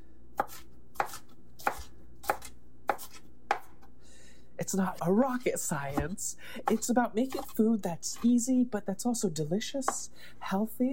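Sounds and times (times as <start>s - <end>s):
knife mincing and coarsely slicing food: 0.4s - 3.9s, 5.2s - 8.4s
speech: 4.6s - 10.9s.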